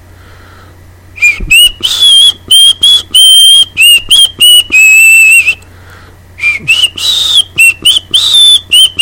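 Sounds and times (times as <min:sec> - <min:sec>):
person whistling a slow wavering folk melody: 0:01.2 - 0:05.6, 0:06.4 - 0:09.0.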